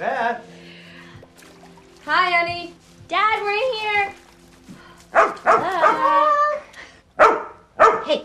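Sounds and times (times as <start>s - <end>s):
speech: 0.0s - 0.5s, 2.1s - 4.2s
dog barking in a bathroom while being washed: 5.2s - 6.0s, 7.2s - 8.2s.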